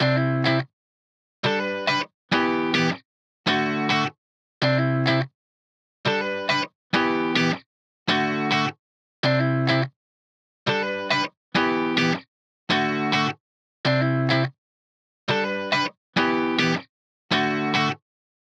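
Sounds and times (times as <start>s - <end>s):
main guitar playing in E minor at 104 BPM: 0.0s - 0.6s, 1.4s - 5.2s, 6.1s - 9.9s, 10.7s - 13.3s, 13.9s - 14.5s, 15.3s - 18.0s.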